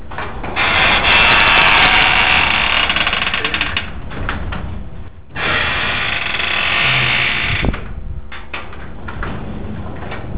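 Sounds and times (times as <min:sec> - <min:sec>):
squeaky garage door hinge: 0:00.6 - 0:03.9, 0:05.4 - 0:07.7.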